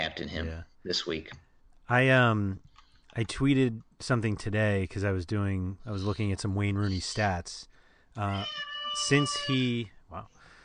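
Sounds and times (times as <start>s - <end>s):
speech: 0.2s - 10.4s
cat meowing: 8.3s - 9.8s.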